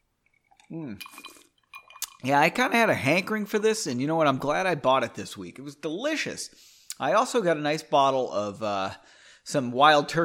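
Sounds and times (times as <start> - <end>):
ice cubes clinking in a glass of bourbon whiskey on the rocks: 0.3 - 2.3
speech: 0.7 - 1.4, 2.2 - 10.2.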